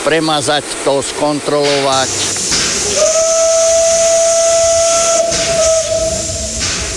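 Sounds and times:
speech: 0.0 - 3.3
continuous hiss of escaping steam from a steam rack locomotive: 0.0 - 6.9
steam rack locomotive whistle: 2.8 - 6.9.

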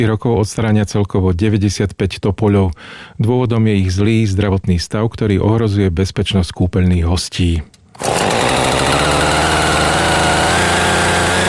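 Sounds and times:
speech: 0.0 - 8.3
chainsaw engine droning while cutting trees: 8.0 - 11.4.

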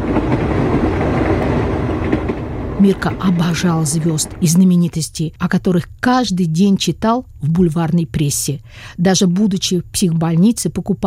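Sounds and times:
express train braking on rails: 0.0 - 4.8
speech: 2.8 - 11.0.

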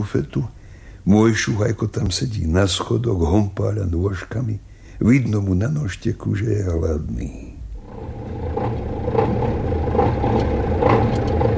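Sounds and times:
speech: 0.0 - 7.5
truck engine idling: 7.8 - 11.5.

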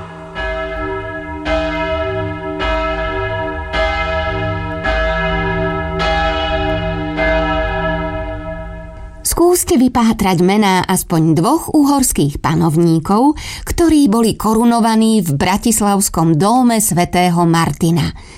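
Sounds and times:
church bells ringing: 0.0 - 10.7
speech: 9.4 - 18.3.

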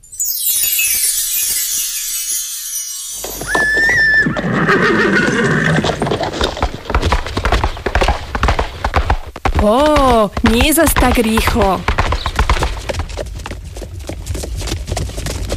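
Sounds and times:
horse hooves galloping: 3.2 - 15.5
horse whinnying: 3.3 - 6.6
speech: 9.6 - 9.9, 10.5 - 12.0.

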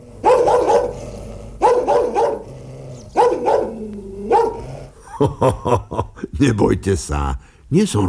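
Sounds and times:
human voice imitating a dog barking: 0.2 - 5.0
laughter: 5.0 - 6.3
speech: 5.2 - 8.0.

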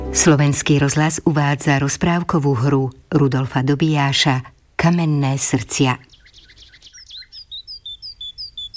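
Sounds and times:
speech: 0.2 - 6.1
small birds chirping: 5.6 - 8.7.

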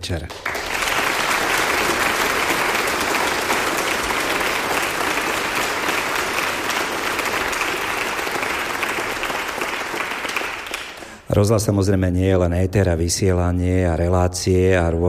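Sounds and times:
speech: 0.0 - 0.5, 11.4 - 15.0
large audience applause at a radio broadcasting centenary event: 0.2 - 11.3.

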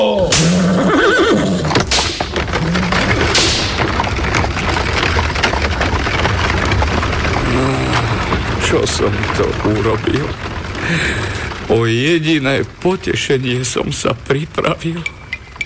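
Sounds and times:
speech: 0.0 - 0.4, 8.8 - 15.2
horse whinnying: 0.0 - 3.7
carriage rumbling with wooden creaks and thuds pulling away: 0.0 - 15.6
clattering hooves: 0.0 - 15.6.

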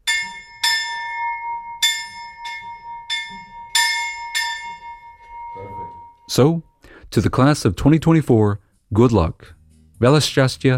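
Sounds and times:
old school bell ringing: 0.0 - 6.4
speech: 6.3 - 10.7.

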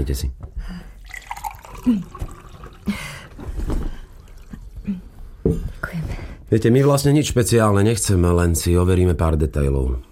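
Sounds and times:
speech: 0.0 - 0.8, 1.8 - 2.2, 2.9 - 3.1, 6.5 - 10.1
water pouring into a glass: 1.0 - 3.4, 4.1 - 4.6
light water drips: 1.0 - 3.5, 4.1 - 4.9.

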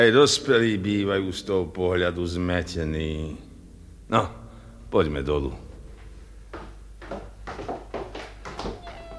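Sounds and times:
speech: 0.0 - 3.5, 4.1 - 5.6
small kittens mewing: 8.6 - 9.1.

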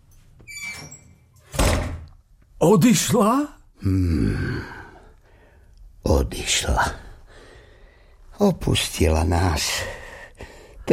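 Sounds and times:
door squeaking as it swings: 0.4 - 2.1
door banged shut by an angry woman: 0.7 - 2.1
speech: 2.6 - 4.8, 6.1 - 7.0, 8.4 - 10.0.

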